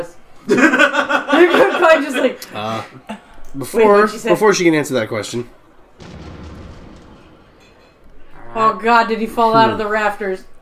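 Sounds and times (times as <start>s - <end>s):
speech: 0.0s - 6.3s, 8.5s - 10.5s
laughter: 0.5s - 2.3s
explosion with a deep boom and low rumble: 6.0s - 8.8s.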